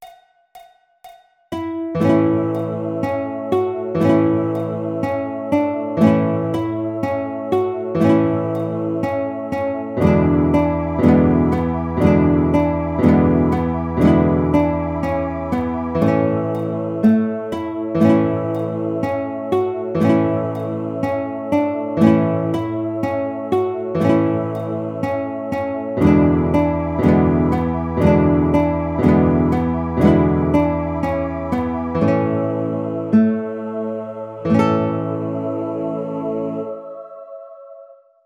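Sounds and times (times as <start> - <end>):
guitar playing a nursery rhyme tune: 1.6 - 36.2.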